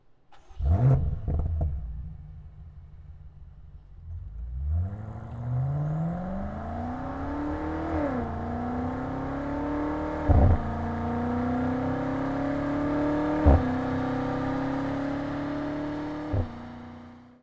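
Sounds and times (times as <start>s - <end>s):
BMW M8 Competition Coupé engine: 0.0s - 17.4s.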